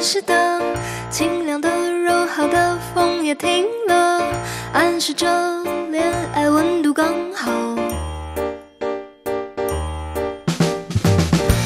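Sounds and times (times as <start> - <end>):
speech: 0.1 - 7.9
doorbell-style chime with bell-like tones: 7.8 - 10.9.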